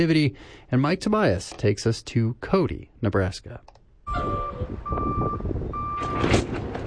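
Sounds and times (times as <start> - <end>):
speech: 0.0 - 6.6
delivery truck reversing beeper: 4.1 - 6.4.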